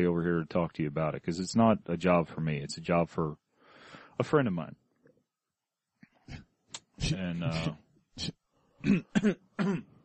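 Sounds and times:
speech: 0:00.0 - 0:03.4, 0:04.2 - 0:04.8, 0:06.3 - 0:09.9
person clearing throat in rough low grunting bursts: 0:08.8 - 0:10.0.

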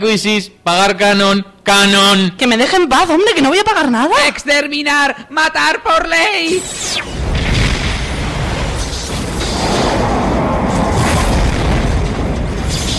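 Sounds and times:
speech: 0:00.0 - 0:07.2
loud sustained explosion with crackling debris: 0:07.1 - 0:12.9.

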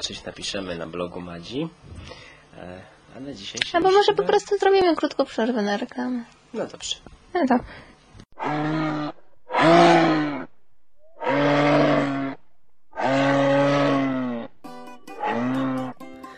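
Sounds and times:
speech: 0:00.0 - 0:09.0
moose calling with low bellowing moans: 0:08.4 - 0:16.1.

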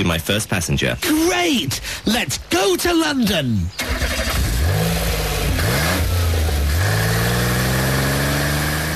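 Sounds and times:
speech: 0:00.0 - 0:04.4
brand-new red sports car accelerating hard through gear changes: 0:04.1 - 0:08.9.

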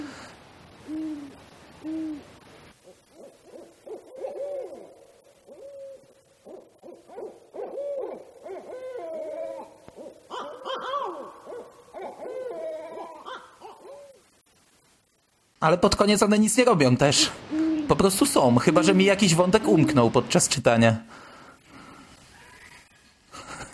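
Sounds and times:
owls hooting: 0:00.8 - 0:14.3, 0:17.3 - 0:20.2
speech: 0:15.6 - 0:21.2.

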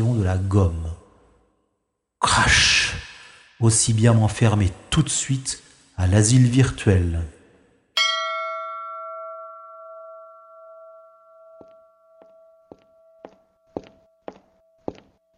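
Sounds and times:
speech: 0:00.0 - 0:00.8, 0:02.2 - 0:03.0, 0:03.6 - 0:07.4
small service bell struck: 0:08.0 - 0:15.3.

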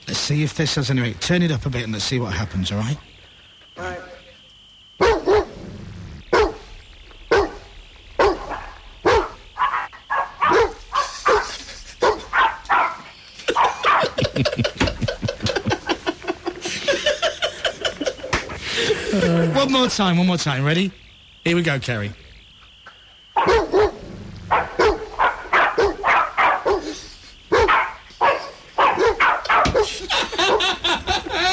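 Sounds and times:
speech: 0:00.1 - 0:03.1, 0:19.9 - 0:22.2
dogs barking indoors in a living room: 0:05.0 - 0:05.6, 0:06.2 - 0:14.5, 0:23.4 - 0:31.0
laughter: 0:11.0 - 0:12.4, 0:13.1 - 0:19.7, 0:29.8 - 0:31.5.

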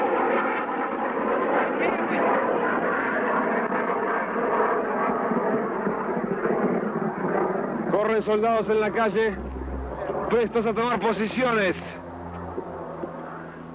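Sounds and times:
enemy airplane engine roar during an attack on an airport: 0:00.0 - 0:13.7
speech: 0:08.2 - 0:09.5, 0:10.3 - 0:12.0.

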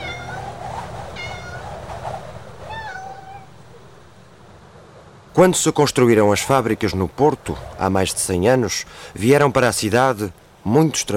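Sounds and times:
cat meowing on a prairie: 0:00.0 - 0:00.5, 0:01.2 - 0:01.7, 0:02.7 - 0:03.6
steady low rumbling noise: 0:00.0 - 0:11.1
speech: 0:05.4 - 0:11.1.

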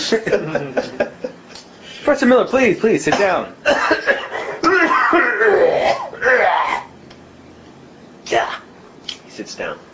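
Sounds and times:
speech: 0:00.1 - 0:01.0, 0:02.1 - 0:04.4, 0:09.5 - 0:09.8
man clearing throat: 0:03.1 - 0:06.6.

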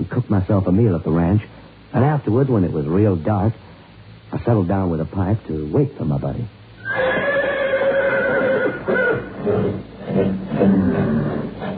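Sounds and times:
speech: 0:00.0 - 0:03.7, 0:04.3 - 0:07.0, 0:08.8 - 0:11.4
horses at a ranch neighing and whinnying at night: 0:06.8 - 0:11.7.

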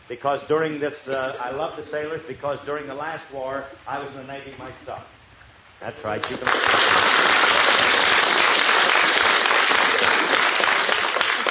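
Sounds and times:
speech: 0:00.1 - 0:05.2, 0:05.8 - 0:07.0
crowd applauding: 0:06.2 - 0:11.5.

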